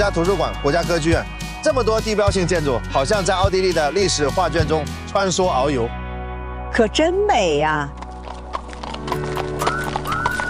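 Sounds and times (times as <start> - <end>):
speech: 0.0 - 6.0, 6.7 - 8.0
carriage horse hooves clip-clopping: 7.8 - 10.4
horse-drawn carriage rumbling and creaking while moving: 7.9 - 10.4.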